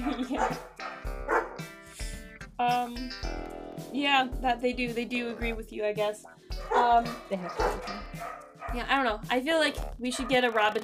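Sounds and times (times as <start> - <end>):
laughter: 0.0 - 0.6
dogs barking with sharp yappy barks: 0.0 - 1.8, 6.5 - 8.9, 10.1 - 10.7
speech: 2.6 - 10.8.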